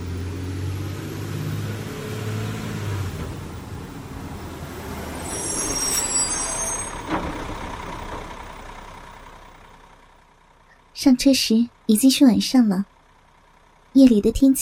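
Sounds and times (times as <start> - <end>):
large sleeper bus engine rumbling and idling: 2.9 - 14.6
sleeper bus air brakes hissing: 5.0 - 7.0
speech: 11.0 - 12.9, 14.0 - 14.6.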